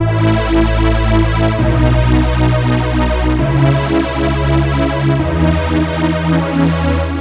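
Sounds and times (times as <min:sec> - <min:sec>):
house synth pad in C sharp major: 0:00.0 - 0:07.1.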